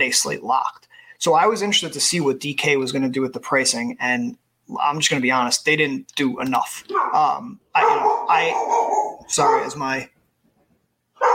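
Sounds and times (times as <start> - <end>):
speech: 0.0 - 10.2
dog barking and yelping: 6.9 - 9.8, 11.2 - 11.3.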